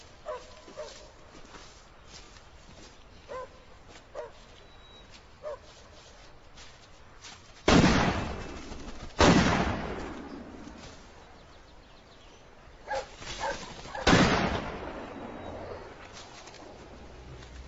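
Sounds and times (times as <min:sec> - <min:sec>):
loud gunshots with tail: 0:07.7 - 0:10.8, 0:13.8 - 0:15.6.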